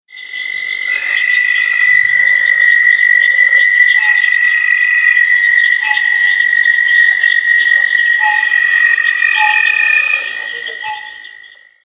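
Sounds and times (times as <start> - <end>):
Southern toad calling: 0.1 - 11.8.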